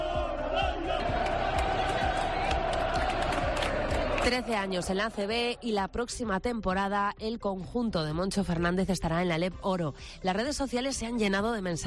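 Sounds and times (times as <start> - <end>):
basketball arena crowd roaring and cheering as players are welcomed: 0.0 - 6.0
speech: 4.2 - 11.8.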